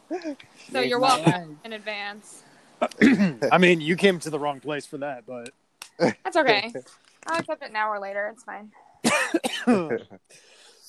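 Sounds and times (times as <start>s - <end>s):
speech: 0.1s - 10.6s
raspy fit of coughing: 2.8s - 3.5s, 9.0s - 10.2s.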